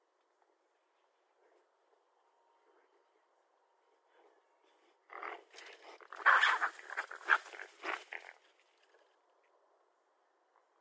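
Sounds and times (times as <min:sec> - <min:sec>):
raccoon giving harsh chittering and squealing calls: 0:05.1 - 0:08.4.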